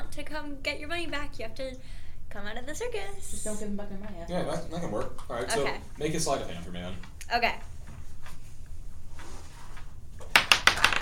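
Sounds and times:
speech: 0.3s - 7.7s
quiet rustling: 5.0s - 10.2s
dice tumbling and bouncing across a tabletop: 10.2s - 11.0s.

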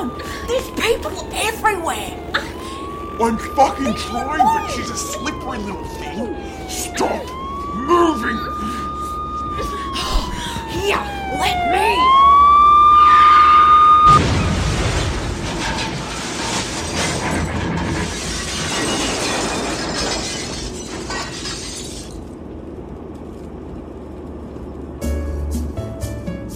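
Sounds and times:
police car siren wailing: 0.0s - 14.3s
speech: 0.5s - 2.6s, 3.2s - 8.8s, 10.8s - 12.3s
loud violent car crash: 13.1s - 22.4s
glass shattering in car crash: 14.2s - 22.3s
crunching and scraping debris from car crash: 14.2s - 22.4s.

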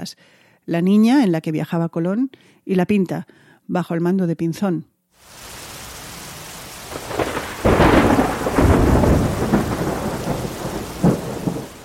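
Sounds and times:
speech: 0.0s - 5.4s
steady heavy rain: 5.2s - 11.8s
loud rolling thunder: 6.7s - 11.8s.

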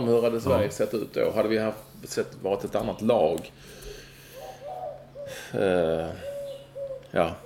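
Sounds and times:
speech: 0.0s - 3.9s, 5.3s - 6.3s, 7.1s - 7.4s
bird call with tonal hoots and harmonic wail: 3.8s - 7.4s.

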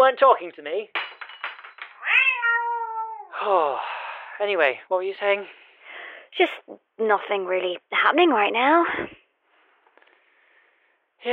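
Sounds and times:
speech: 0.1s - 1.1s, 3.4s - 5.6s, 6.3s - 9.2s, 11.2s - 11.3s
cat chirping: 2.0s - 3.3s.

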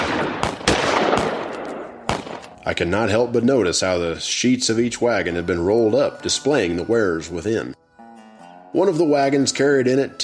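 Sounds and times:
guns fired into the air by onlookers: 0.0s - 2.6s
speech: 2.6s - 7.8s, 8.7s - 10.2s.

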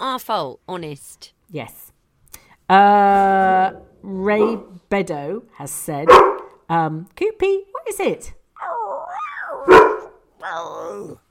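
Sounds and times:
speech: 0.1s - 1.9s, 2.7s - 11.2s
dog barking: 6.1s - 6.6s, 9.5s - 10.2s
dog whining: 8.6s - 11.2s.

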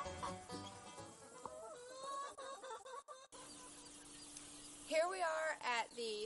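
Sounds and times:
flock of chickens clucking and chattering outdoors in a field of fresh pasture: 0.0s - 6.2s
speech: 0.3s - 0.6s, 4.9s - 6.2s.

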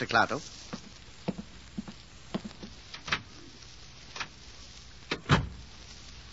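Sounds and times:
speech: 0.0s - 0.6s
hospital door shutting with a solid thump: 5.1s - 5.6s.

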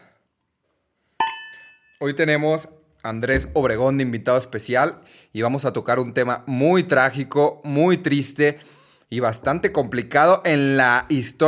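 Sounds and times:
glasses clinking in a toast: 1.2s - 2.0s
speech: 2.0s - 11.4s.

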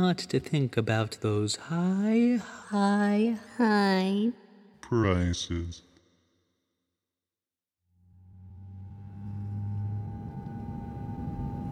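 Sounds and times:
speech: 0.0s - 5.9s
thin tonal whine: 8.0s - 11.7s
airplane engine rumble heard in the cockpit: 8.5s - 11.7s.

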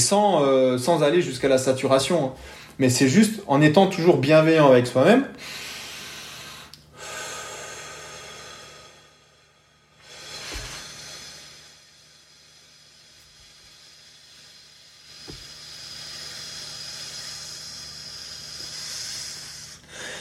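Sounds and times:
speech: 0.1s - 5.6s
person exhaling slowly: 5.4s - 20.1s.

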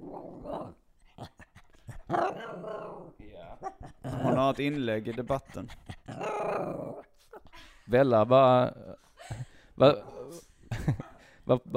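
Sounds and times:
dog growling low: 0.0s - 4.8s, 5.7s - 7.6s, 9.9s - 10.5s
speech: 2.1s - 11.7s.

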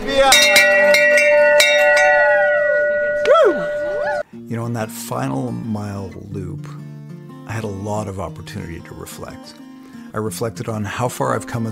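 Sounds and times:
bell ringing: 0.2s - 4.2s
speech: 4.7s - 6.8s, 7.5s - 11.7s.

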